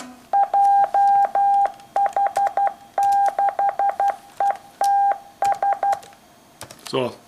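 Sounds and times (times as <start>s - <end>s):
Morse code beeps spelling an amateur radio call sign: 0.3s - 6.0s.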